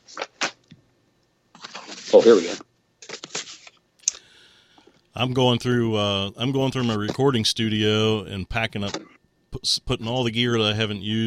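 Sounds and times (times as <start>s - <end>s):
paper sheets rustling and being flipped: 0.0s - 0.6s, 1.6s - 3.8s
speech: 2.1s - 2.7s, 5.2s - 11.2s.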